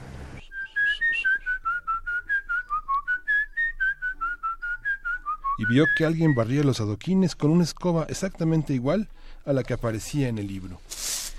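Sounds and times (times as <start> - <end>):
person whistling a quick bouncy tune: 0.4 - 6.5
speech: 5.6 - 11.1.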